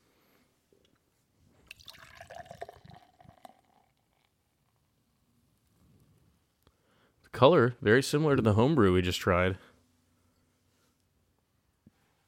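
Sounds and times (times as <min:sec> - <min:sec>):
beer poured from a can into a glass: 0:01.6 - 0:04.5
speech: 0:07.4 - 0:09.7.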